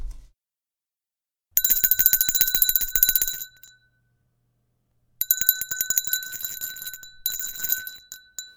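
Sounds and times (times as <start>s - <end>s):
small bell jingling: 1.6s - 3.8s, 5.2s - 8.5s.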